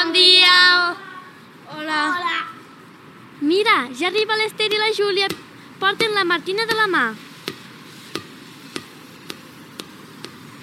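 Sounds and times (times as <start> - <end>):
faint hiss: 0.0 - 10.6
speech: 4.0 - 7.3
ball bouncing on a hard surface: 4.7 - 10.6.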